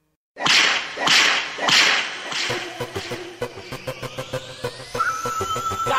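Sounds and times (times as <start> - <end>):
whip cracks in a reggaeton track: 0.4 - 3.2
reggaeton percussive beat: 0.5 - 4.3
rising synth tone: 2.2 - 5.9.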